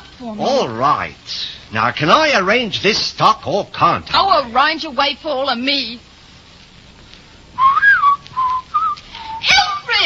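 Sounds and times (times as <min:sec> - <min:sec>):
speech: 0:00.2 - 0:06.1
person whistling a tune: 0:07.6 - 0:09.5.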